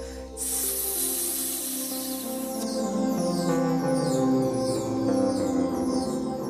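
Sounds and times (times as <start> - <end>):
person hissing through teeth imitating a snake: 0.0 - 2.6
gentle music: 0.0 - 6.4.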